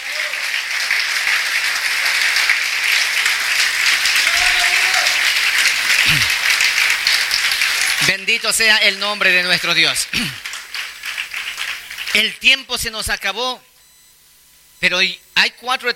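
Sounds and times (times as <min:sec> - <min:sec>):
crowd applauding: 0:00.0 - 0:12.3
speech: 0:08.3 - 0:10.4, 0:12.2 - 0:13.7, 0:14.8 - 0:15.9.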